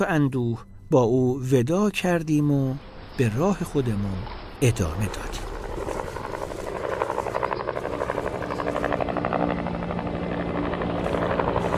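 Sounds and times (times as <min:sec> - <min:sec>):
speech: 0:00.0 - 0:05.5
rotor thumping of several military helicopters: 0:05.1 - 0:11.7.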